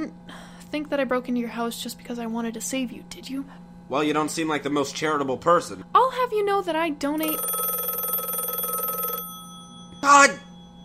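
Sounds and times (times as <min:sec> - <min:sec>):
speech: 0:00.0 - 0:07.6, 0:10.1 - 0:10.4
telephone ringing with a rapid trilling bell: 0:07.2 - 0:10.8.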